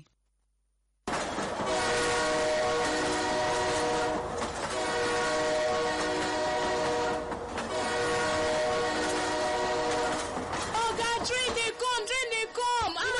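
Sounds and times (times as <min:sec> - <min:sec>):
train roaring past with rumble and rattle of cars: 0:01.1 - 0:12.1
train horn blaring: 0:01.6 - 0:10.4.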